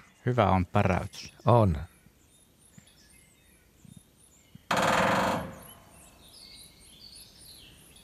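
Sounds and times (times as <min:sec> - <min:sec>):
faint birdsong chirps: 0:00.0 - 0:08.0
speech: 0:00.2 - 0:01.9
woodpecker drumming on a ringing resonant surface: 0:04.6 - 0:06.2.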